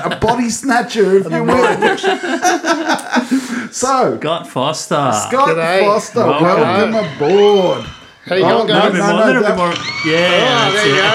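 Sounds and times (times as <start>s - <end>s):
laughter: 0.0s - 3.9s, 5.8s - 11.1s
speech: 0.0s - 11.1s
crowd cheering with whoops and shouted voices: 6.3s - 11.1s.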